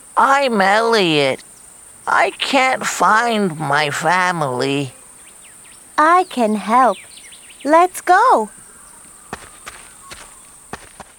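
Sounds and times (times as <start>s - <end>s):
steady hiss: 0.0s - 11.1s
speech: 0.2s - 1.5s, 2.1s - 5.0s, 6.0s - 8.6s
footsteps walking: 9.0s - 11.1s.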